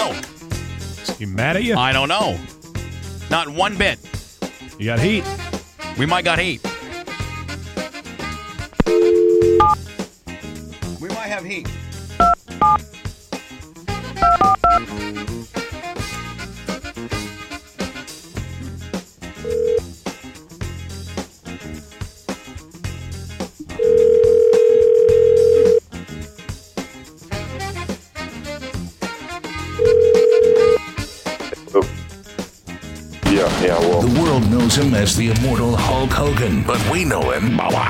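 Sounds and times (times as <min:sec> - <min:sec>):
busy musical backing: 0:00.0 - 0:37.8
speech: 0:01.2 - 0:02.6, 0:03.3 - 0:04.1, 0:04.8 - 0:05.4, 0:06.0 - 0:06.7, 0:11.3 - 0:12.9, 0:34.8 - 0:37.8
touch-tone phone dialing beeps: 0:08.8 - 0:09.8, 0:12.2 - 0:12.8, 0:14.2 - 0:14.8, 0:19.5 - 0:19.8, 0:23.8 - 0:25.8, 0:29.8 - 0:30.8.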